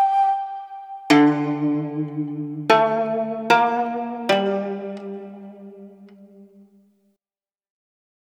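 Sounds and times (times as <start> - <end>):
midi guitar instruments: 1.1 - 6.7.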